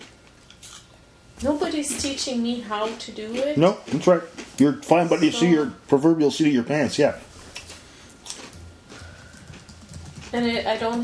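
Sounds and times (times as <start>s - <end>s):
low hum: 0.0s - 11.0s
speech: 1.4s - 7.3s, 10.3s - 11.0s
typing on a computer keyboard: 9.2s - 11.0s.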